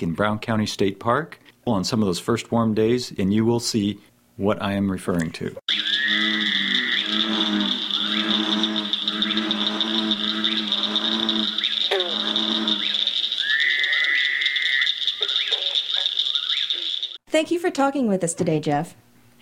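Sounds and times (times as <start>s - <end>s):
speech: 0.0s - 5.6s, 17.4s - 19.0s
chorus of frogs calling: 5.7s - 17.2s.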